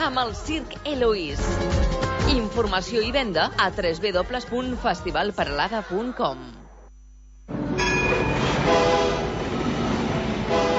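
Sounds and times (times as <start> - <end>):
speech: 0.1 - 6.6
sustained horn-like tone: 7.4 - 10.7
rack railway train rumbling: 7.9 - 10.7.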